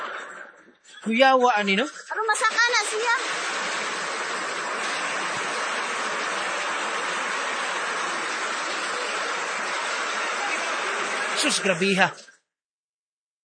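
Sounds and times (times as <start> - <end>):
speech: 1.0 - 3.8, 11.4 - 12.3
fast-flowing floodwater rushing: 2.4 - 12.2.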